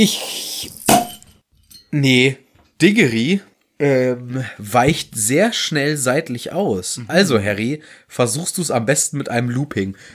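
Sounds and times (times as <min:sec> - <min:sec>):
speech: 0:00.0 - 0:00.7, 0:01.9 - 0:10.1
beer bottle opening pop: 0:00.6 - 0:01.3.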